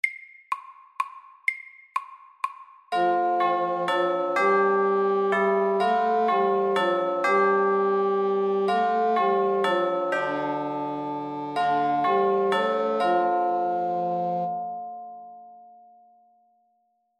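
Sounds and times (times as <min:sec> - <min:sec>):
bell ringing fast: 0:02.9 - 0:15.7.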